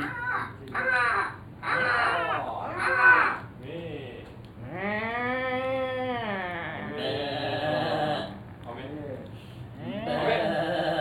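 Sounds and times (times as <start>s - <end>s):
person imitating crow caws: 0.2s - 3.4s, 4.6s - 8.4s, 9.9s - 10.9s
person imitating a sheep bleat: 4.7s - 8.4s, 9.9s - 10.9s.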